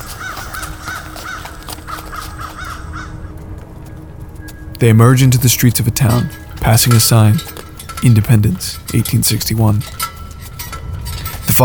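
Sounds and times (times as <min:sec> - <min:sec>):
crows cawing: 0:00.0 - 0:04.0
speech: 0:04.8 - 0:10.1.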